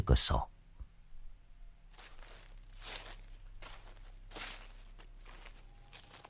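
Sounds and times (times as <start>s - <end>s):
low steady hum: 0.4s - 6.2s
soft rustling footsteps outside in a banana garden: 1.8s - 6.2s.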